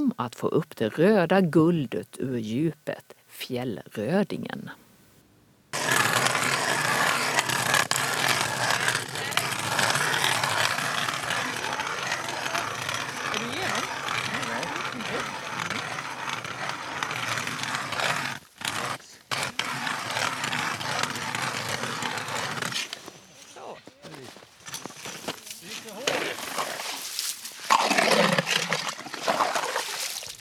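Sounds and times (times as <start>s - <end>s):
speech: 0.2s - 4.8s
ice auger drilling through thick ice: 5.8s - 23.2s, 24.6s - 30.3s.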